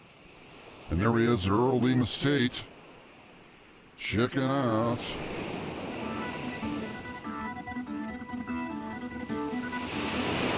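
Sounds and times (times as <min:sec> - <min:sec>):
ocean surf: 0:00.0 - 0:10.5
speech: 0:00.9 - 0:02.7, 0:04.0 - 0:05.3
sustained musical tones: 0:05.9 - 0:10.5.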